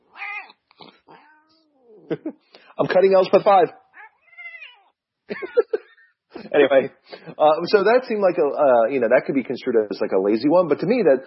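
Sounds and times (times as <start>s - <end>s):
angry cat yowling while picked up: 0.1s - 0.6s, 1.2s - 2.1s, 4.0s - 4.9s
laughter: 2.0s - 3.1s, 5.3s - 6.8s
speech: 2.1s - 3.8s, 5.3s - 5.6s, 6.6s - 11.2s.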